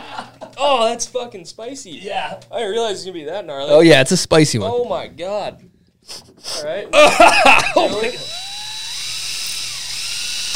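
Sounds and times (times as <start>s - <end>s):
laughter: 0.0s - 0.6s, 6.9s - 8.4s
speech: 0.6s - 8.4s
power drill piercing a beer can: 7.8s - 10.5s.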